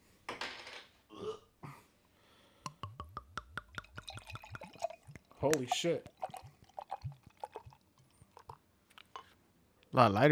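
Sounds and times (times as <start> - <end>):
beer glugging and splashing as poured into a glass: 3.6 - 8.6
speech: 5.4 - 6.1, 10.0 - 10.3.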